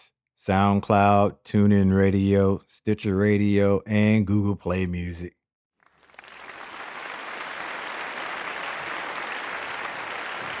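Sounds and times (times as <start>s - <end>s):
speech: 0.4s - 5.4s
crowd applause of many hands clapping: 5.9s - 10.5s.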